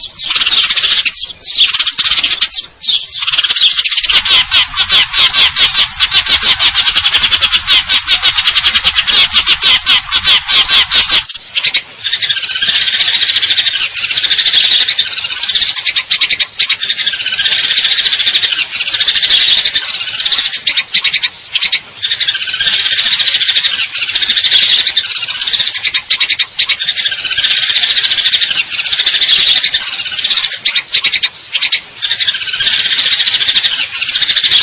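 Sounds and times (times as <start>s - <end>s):
Eurasian tree sparrow chirping and trilling: 0.0s - 34.6s.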